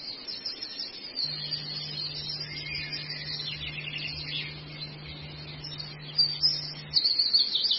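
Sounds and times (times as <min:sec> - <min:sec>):
steady low hum: 0:00.9 - 0:07.6
long-tailed shrike song with dense high chattering phrases: 0:01.2 - 0:07.3.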